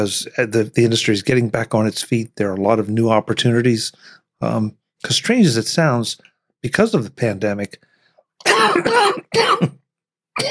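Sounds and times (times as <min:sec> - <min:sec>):
speech: 0:00.0 - 0:09.8
person coughing: 0:08.4 - 0:09.8.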